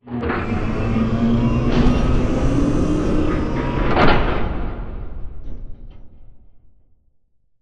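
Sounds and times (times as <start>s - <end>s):
robot arm at final station: 0.2s - 5.0s.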